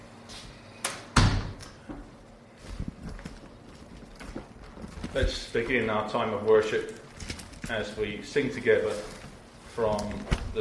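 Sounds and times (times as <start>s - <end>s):
door pulled shut with a solid thud: 1.2s - 1.6s
soft shuffling footsteps in a quiet roomy space: 2.0s - 10.5s
speech: 5.2s - 7.0s, 7.7s - 9.2s, 9.8s - 10.5s.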